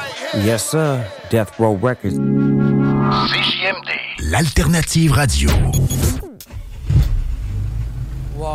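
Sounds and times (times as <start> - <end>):
speech: 0.4 - 6.2
car engine rumbling: 6.4 - 8.5.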